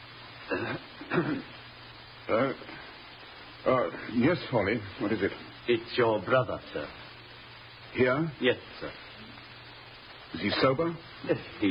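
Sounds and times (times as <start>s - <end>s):
butler giving discreet coughs and throat clears: 0.5s - 1.6s
speech: 0.5s - 1.6s, 2.3s - 2.7s, 3.6s - 7.0s, 7.9s - 9.0s, 10.3s - 11.6s.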